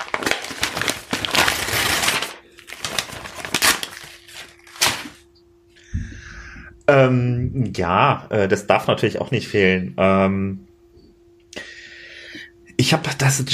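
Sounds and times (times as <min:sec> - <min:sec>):
gift paper and packaging crinkling and tearing as a gift is unwrapped: 0:00.0 - 0:05.2
faint steady hum: 0:00.0 - 0:13.5
speech: 0:06.9 - 0:10.7, 0:12.9 - 0:13.5.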